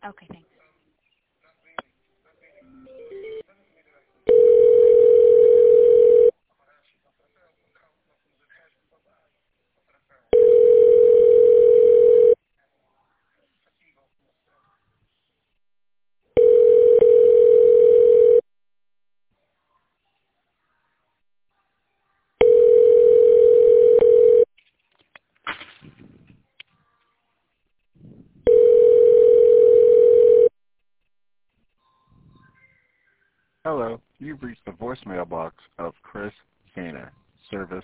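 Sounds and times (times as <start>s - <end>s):
speech: 0.0s - 0.5s
telephone ringback tone during a call transfer: 4.3s - 6.3s, 10.4s - 12.4s, 16.4s - 18.4s, 22.4s - 24.5s, 28.5s - 30.5s.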